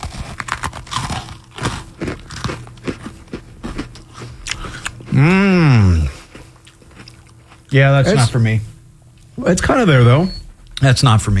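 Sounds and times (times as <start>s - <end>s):
chicken and waffles being eaten with the mouth open: 0.0s - 8.3s
speech: 5.2s - 6.1s, 7.7s - 8.7s, 9.4s - 11.3s.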